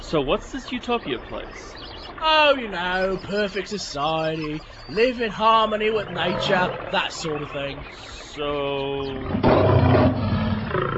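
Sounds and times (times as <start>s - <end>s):
speech: 0.1s - 9.7s
tiger roaring while mauling a man in the wild mountains of Nepal: 6.0s - 7.3s, 9.1s - 10.9s.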